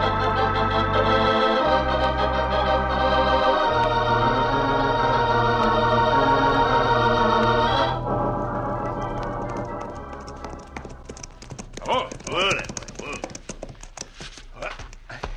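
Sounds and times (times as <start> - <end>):
music: 0.0 - 13.2
horse hooves clip-clopping: 8.9 - 15.3.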